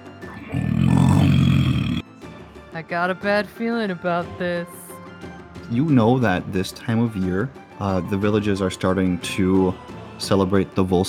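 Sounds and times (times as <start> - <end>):
wolf growling: 0.3 - 2.0
speech: 2.8 - 4.8, 5.7 - 11.0.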